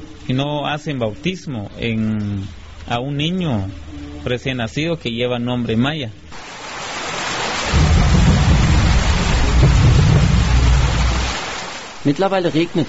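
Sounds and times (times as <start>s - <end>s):
steady rain hissing loudly: 0.0s - 5.5s, 6.2s - 12.8s
speech: 0.3s - 6.2s, 12.0s - 12.8s
deep rolling rumble of thunder: 7.6s - 11.4s.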